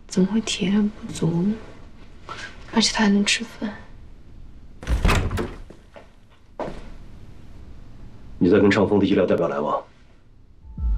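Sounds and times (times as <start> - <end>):
speech: 0.1 - 1.7, 2.3 - 3.8, 8.4 - 9.9
door banging open with a loud clunk and rattle: 4.8 - 5.8.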